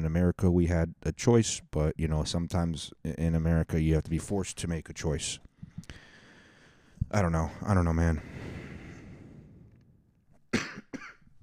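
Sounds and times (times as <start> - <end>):
speech: 0.1 - 6.0, 7.1 - 8.6
person coughing sharply: 10.5 - 11.3.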